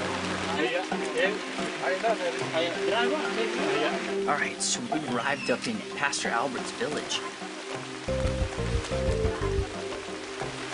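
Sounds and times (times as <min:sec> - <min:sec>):
heavy rain pouring down on a village overlooking the ocean: 0:00.0 - 0:10.7
speech: 0:01.2 - 0:09.7
deep rumbling hum: 0:08.1 - 0:09.8.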